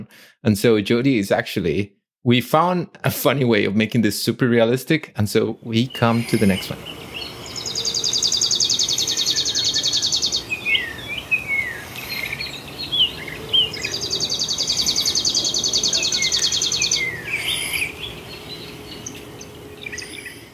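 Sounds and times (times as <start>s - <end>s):
speech: 0.0s - 7.0s
chipping sparrow singing dry rapid trills: 5.8s - 20.5s.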